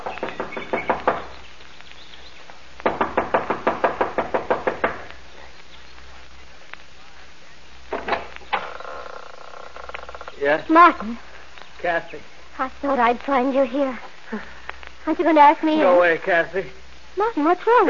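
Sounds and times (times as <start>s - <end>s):
young woman knocking impatiently on the front door of a small mountain lodge: 0.0s - 1.3s, 2.8s - 5.1s
speech: 10.4s - 17.8s.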